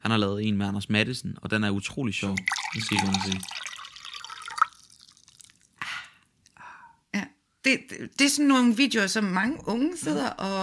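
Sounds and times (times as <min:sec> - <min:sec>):
speech: 0:00.1 - 0:03.6, 0:07.7 - 0:10.6
water pouring: 0:02.2 - 0:05.8.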